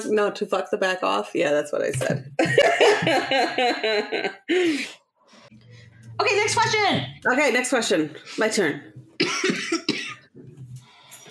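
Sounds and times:
speech: 0:00.0 - 0:05.0, 0:06.2 - 0:09.9
laughter: 0:02.4 - 0:04.7
person clearing throat raspily: 0:09.2 - 0:10.2
person coughing harshly: 0:09.2 - 0:10.2.

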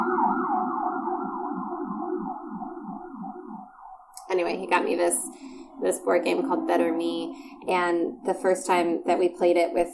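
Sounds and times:
emergency vehicle sirens wailing outside: 0:00.0 - 0:03.1, 0:03.8 - 0:08.0
speech: 0:04.4 - 0:09.9.

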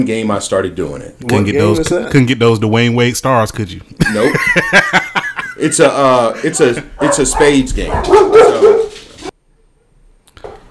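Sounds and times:
speech: 0:00.0 - 0:08.9
laughter: 0:03.9 - 0:07.4
dogs barking at night: 0:06.8 - 0:09.3.

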